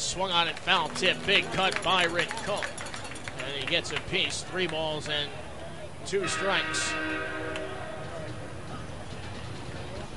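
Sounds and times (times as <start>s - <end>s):
speech: 0.1s - 2.8s, 3.4s - 5.4s, 6.0s - 7.5s
stadium crowd murmuring: 0.5s - 10.1s
train sound effect played in a stadium: 0.7s - 3.7s, 6.2s - 10.1s
horn-like tonal blast: 6.2s - 8.2s.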